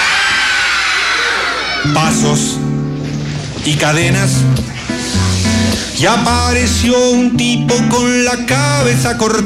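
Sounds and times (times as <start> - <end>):
many people screaming: 0.0 - 2.4
speech: 1.8 - 2.8, 3.6 - 9.4.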